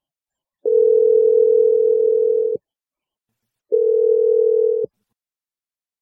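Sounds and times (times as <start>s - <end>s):
long steady telephone ringing tones: 0.7s - 2.6s, 3.7s - 4.9s.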